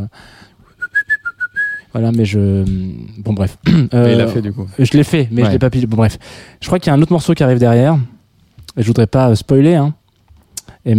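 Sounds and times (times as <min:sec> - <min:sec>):
speech: 0:00.0 - 0:00.4, 0:02.0 - 0:08.1, 0:08.8 - 0:10.0
whistled advertising jingle tune: 0:00.8 - 0:01.8.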